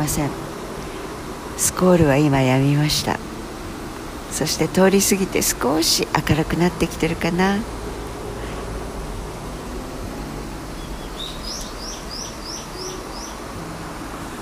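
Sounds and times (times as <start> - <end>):
speech: 0.0 - 0.4, 1.6 - 3.3, 4.3 - 7.8
low outdoor rumble, possibly traffic: 0.0 - 14.4
bird chirping: 10.7 - 13.5.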